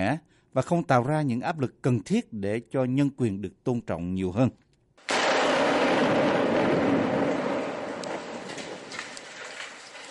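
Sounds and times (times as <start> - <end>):
speech: 0.0 - 4.6
barrel bomb exploding in a suburb: 5.1 - 10.1
faint crackles: 5.1 - 10.1.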